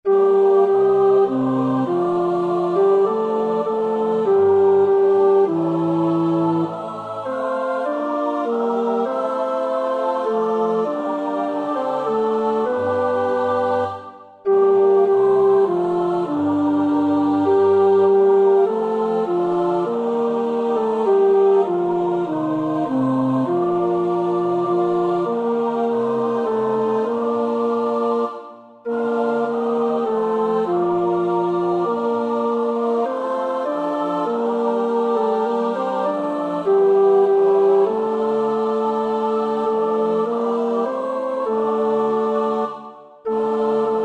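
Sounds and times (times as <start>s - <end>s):
tenor singing: 0.0s - 44.0s.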